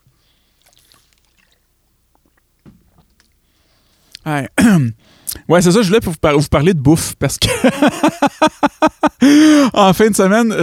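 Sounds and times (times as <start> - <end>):
person sipping water: 0.0 - 4.3
low gulp of water: 0.0 - 5.5
soft wet mouth clicks: 0.6 - 3.4, 4.1 - 4.3
speech: 4.2 - 10.6
laughter: 7.4 - 9.4.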